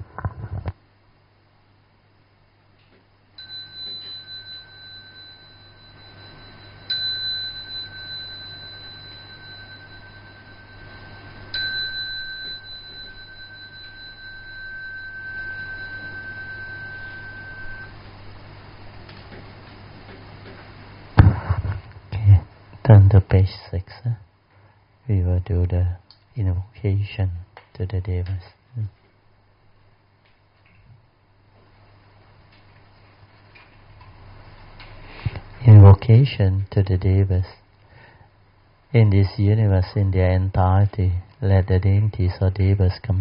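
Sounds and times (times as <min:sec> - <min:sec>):
faint steady hum: 0:00.0 - 0:43.1
meditation bell ringing: 0:03.4 - 0:18.6
speech: 0:22.9 - 0:24.3, 0:25.1 - 0:29.0, 0:36.0 - 0:37.6, 0:38.9 - 0:43.1.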